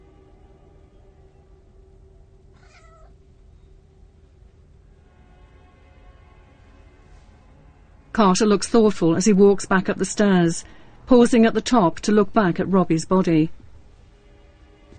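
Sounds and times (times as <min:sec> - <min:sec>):
steady low hiss: 0:00.0 - 0:14.9
cat meowing: 0:02.5 - 0:03.2
speech: 0:08.2 - 0:13.6.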